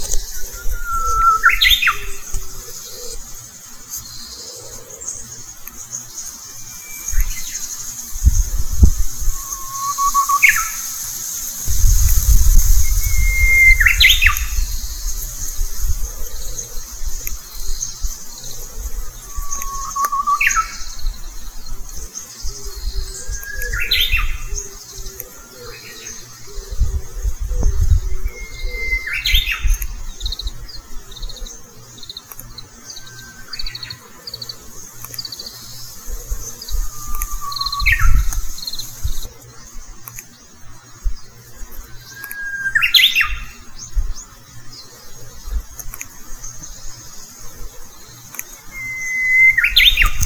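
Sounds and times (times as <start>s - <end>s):
Japanese bush warbler calling: 0.0s - 50.2s.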